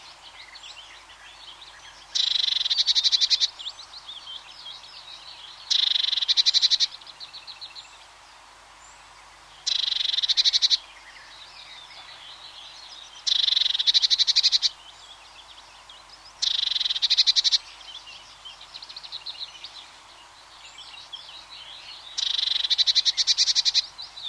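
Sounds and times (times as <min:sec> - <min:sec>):
blackbird, willow warbler, chaffinch, song thrush and robin in distance: 0:00.0 - 0:24.2
blue tit buzzy pulsed churring awareness call: 0:02.2 - 0:03.5, 0:05.7 - 0:06.9, 0:09.6 - 0:10.8, 0:13.2 - 0:14.8, 0:16.4 - 0:17.6, 0:22.2 - 0:23.9.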